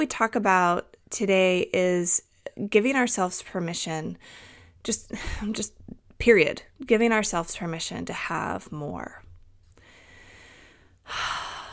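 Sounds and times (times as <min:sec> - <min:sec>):
speech: 0:00.0 - 0:09.2, 0:11.1 - 0:11.4
deep breath: 0:04.2 - 0:04.8, 0:09.7 - 0:11.7.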